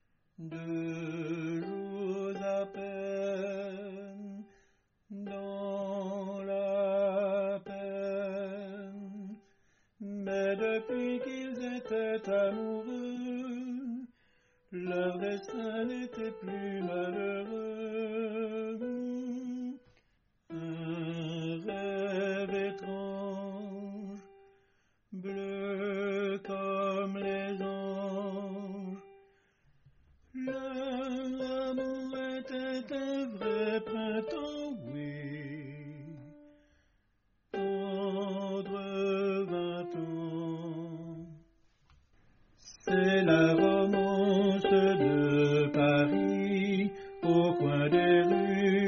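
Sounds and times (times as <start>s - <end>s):
tenor singing a romance: 0.4s - 4.5s, 5.1s - 14.1s, 14.7s - 19.9s, 20.5s - 24.4s, 25.2s - 29.2s, 30.4s - 36.6s, 37.5s - 41.5s, 42.6s - 48.8s.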